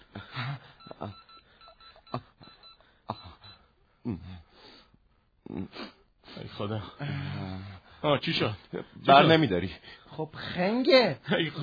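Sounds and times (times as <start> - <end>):
faint breathy vocal noises: 0.0 - 8.1
short phone keypad beeps while dialing: 0.8 - 3.6
speech: 8.0 - 11.6.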